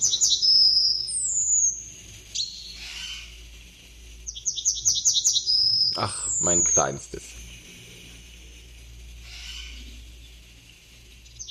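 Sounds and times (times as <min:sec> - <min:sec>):
yellowhammer singing: 0:00.0 - 0:03.4, 0:04.2 - 0:07.6, 0:11.2 - 0:11.4
speech: 0:06.0 - 0:07.4.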